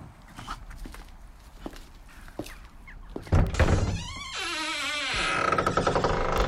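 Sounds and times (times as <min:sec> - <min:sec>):
steady noise: 0:00.0 - 0:06.4
footsteps walking over to a stable: 0:00.3 - 0:03.3.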